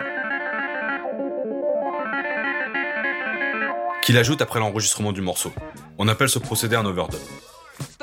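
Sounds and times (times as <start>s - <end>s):
funky clavinet played through a wah pedal: 0.0s - 4.0s
speech: 4.1s - 7.9s.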